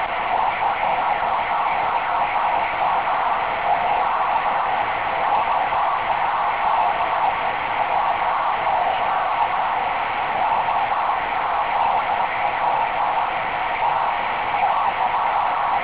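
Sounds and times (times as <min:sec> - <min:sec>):
SSB radio aurora signal on VHF: 0:00.0 - 0:15.8.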